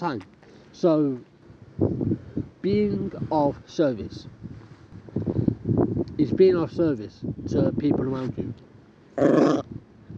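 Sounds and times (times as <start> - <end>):
speech: 0.0 - 4.4, 6.2 - 9.8
dog growling: 9.2 - 9.7.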